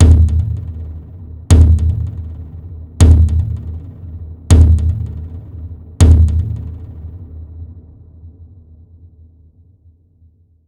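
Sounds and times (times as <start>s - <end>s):
drum sequence: 0.0s - 7.2s.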